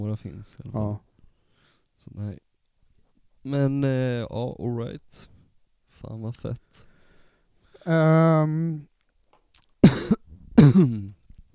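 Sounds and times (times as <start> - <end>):
speech: 0.0 - 1.1, 2.0 - 2.5, 3.4 - 5.4, 6.0 - 6.9, 7.8 - 8.9, 10.6 - 11.2
loud harsh coughs directly into the microphone: 9.8 - 11.2
sustained voiced hum or throat sound: 9.8 - 11.2.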